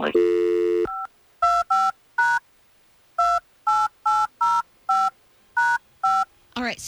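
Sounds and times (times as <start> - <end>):
speech: 0.0 - 0.6
telephone keypad touch-tone beeps as a phone number is dialed: 0.2 - 2.4, 3.2 - 6.3.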